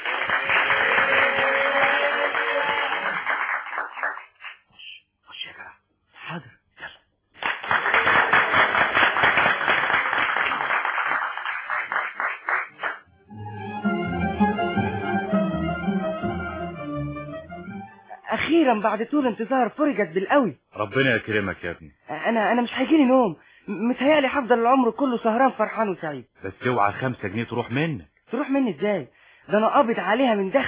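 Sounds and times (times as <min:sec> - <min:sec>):
audience applause for a new singer being introduced at a venue: 0:00.0 - 0:04.5, 0:07.4 - 0:13.0
tonal sound: 0:13.1 - 0:18.2
speech: 0:18.7 - 0:30.6.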